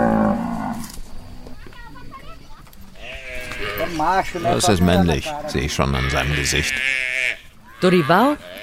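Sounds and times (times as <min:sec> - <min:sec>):
cattle mooing while herded by cowboys in the Pantanal Brazil in the dry season: 0:00.0 - 0:01.0, 0:03.0 - 0:04.7, 0:05.6 - 0:08.6
speech: 0:04.0 - 0:07.0, 0:07.8 - 0:08.6.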